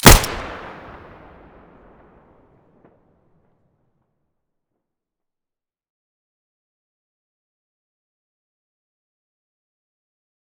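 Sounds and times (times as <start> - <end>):
Five-seven pistol muzzle gunshot in stereo: 0.0 - 1.1.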